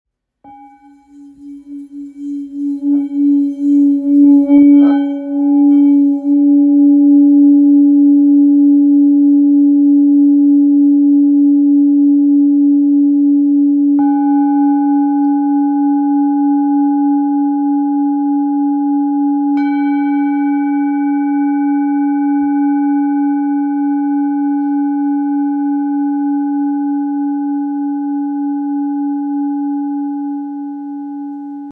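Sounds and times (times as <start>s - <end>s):
full moon singing bowl of 1.445kg sounding C sharp: 0.4s - 31.7s.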